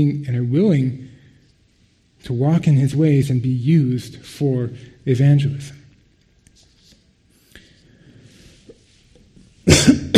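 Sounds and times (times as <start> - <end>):
speech: 0.0 - 1.1, 2.2 - 5.8
person coughing: 9.6 - 10.1.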